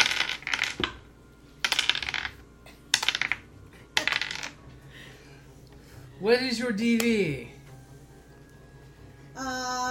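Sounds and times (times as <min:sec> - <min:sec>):
dice rattling and clattering across a hard tabletop: 0:00.0 - 0:01.0, 0:01.6 - 0:04.6
speech: 0:06.2 - 0:07.5.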